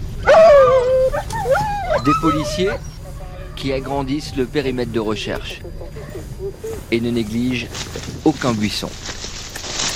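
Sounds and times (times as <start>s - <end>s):
low rumble: 0.0s - 9.9s
search dog whining and whimpering during a search by firefighters and police: 0.2s - 4.7s, 5.6s - 6.9s
speech: 2.0s - 3.0s, 3.6s - 9.2s.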